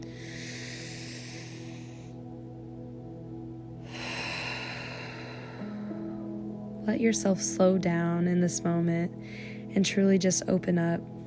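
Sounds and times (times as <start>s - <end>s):
deep breath: 0.0s - 2.3s, 3.8s - 6.4s, 9.2s - 9.7s
low musical drone: 0.0s - 11.2s
speech: 6.9s - 11.2s.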